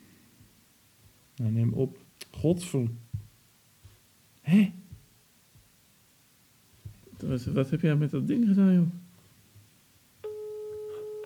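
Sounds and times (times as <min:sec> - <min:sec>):
quiet hiss: 0:00.0 - 0:11.2
speech: 0:01.4 - 0:03.0, 0:04.5 - 0:04.8, 0:07.2 - 0:09.0
telephone busy signal tone after a rejected video call: 0:10.2 - 0:11.2.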